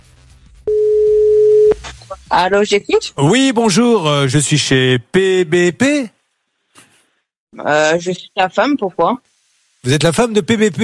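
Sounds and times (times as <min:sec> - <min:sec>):
telephone ringback tone while placing a call: 0:00.7 - 0:01.8
speech: 0:02.1 - 0:06.2, 0:07.6 - 0:10.8.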